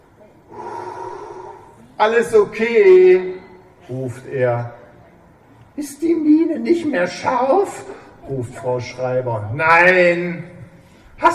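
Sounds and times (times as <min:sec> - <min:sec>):
man breathing deeply in and out: 0:00.5 - 0:01.9
speech: 0:02.0 - 0:04.8, 0:05.8 - 0:10.5.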